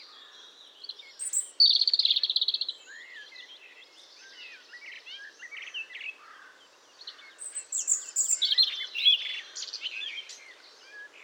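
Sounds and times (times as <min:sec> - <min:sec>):
European robin Erithacus rubecula singing: 0:00.8 - 0:03.5, 0:07.4 - 0:11.2.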